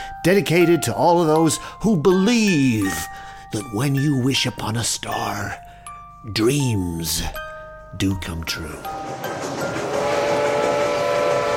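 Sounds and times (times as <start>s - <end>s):
speech: 0.2s - 5.6s, 6.2s - 9.5s
miniature steam train rumbling running noise in an amusement park: 8.4s - 11.5s
miniature steam train whistle in an amusement park: 9.6s - 11.5s.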